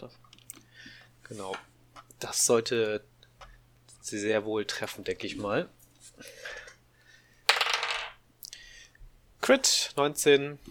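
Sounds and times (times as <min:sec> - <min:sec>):
speech: 0:00.0 - 0:00.3, 0:01.3 - 0:03.1, 0:04.0 - 0:06.5, 0:09.5 - 0:10.6
dice rolling on a hard tabletop: 0:07.5 - 0:08.2.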